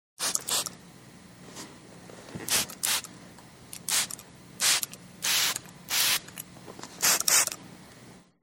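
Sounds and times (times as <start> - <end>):
atomizer spraying: 0.2 - 0.8, 2.4 - 3.1, 3.7 - 6.4, 7.0 - 7.6.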